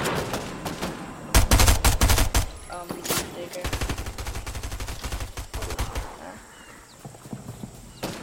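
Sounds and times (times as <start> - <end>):
rapid gunfire in a video game: 0.2 - 2.5, 3.6 - 6.2.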